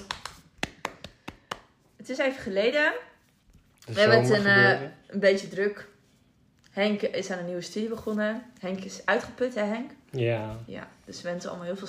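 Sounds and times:
hand clapping applause: 0.0 - 1.9
speech: 2.1 - 3.1, 3.9 - 5.9, 6.8 - 11.8.

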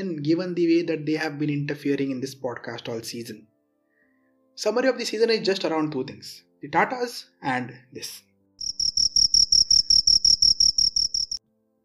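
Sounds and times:
speech: 0.0 - 3.5, 4.6 - 8.3
cricket chirping: 8.6 - 11.4.

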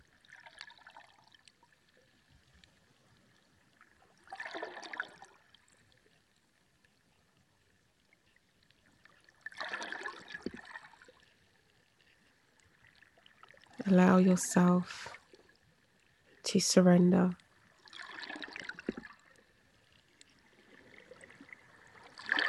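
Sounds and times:
gently flowing water trickling: 0.0 - 22.4
speech: 13.9 - 15.2, 16.5 - 17.4.

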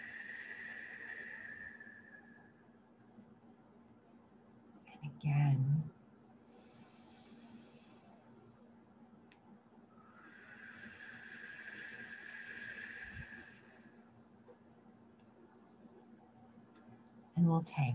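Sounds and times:
person breathing deeply in and exhaling: 0.0 - 2.6, 6.4 - 8.6, 10.0 - 14.2
faint steady hum: 0.0 - 17.9
speech: 17.5 - 17.9.

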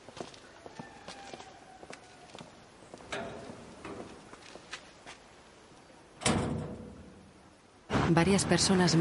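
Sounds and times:
footsteps: 0.0 - 5.3
door closing with a loud sharp thud: 6.2 - 6.9
speech: 8.1 - 8.9.

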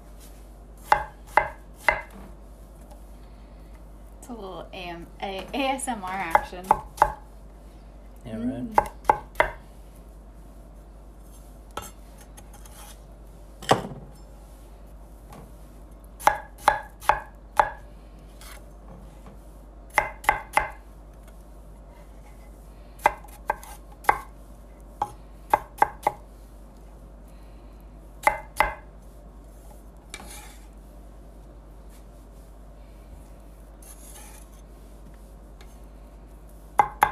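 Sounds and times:
knife chopping strawberries and blackberries: 0.8 - 2.2, 6.1 - 7.3, 8.7 - 9.6, 16.2 - 17.8, 19.9 - 20.8, 23.0 - 24.3, 25.0 - 26.2, 28.2 - 28.9, 36.8 - 37.1
speech: 4.3 - 6.9, 8.2 - 9.0.

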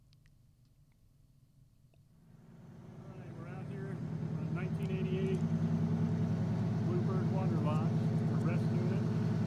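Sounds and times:
old 1988 bus diesel engine idling: 2.2 - 9.4.

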